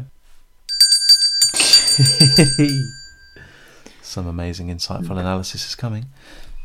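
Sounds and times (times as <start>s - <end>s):
bright bell ringing with rapid repeated strikes: 0.7s - 3.8s
speech: 2.0s - 3.0s, 4.1s - 6.5s.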